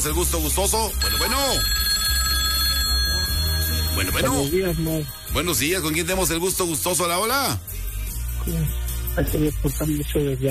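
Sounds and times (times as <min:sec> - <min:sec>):
speech: 0:00.0 - 0:01.9, 0:04.0 - 0:07.8, 0:08.4 - 0:10.4
telephone ringing as a call comes in: 0:00.8 - 0:07.3.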